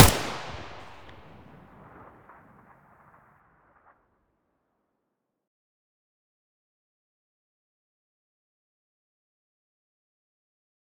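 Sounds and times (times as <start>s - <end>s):
AK74U muzzle gunshot: 0.0s - 4.0s.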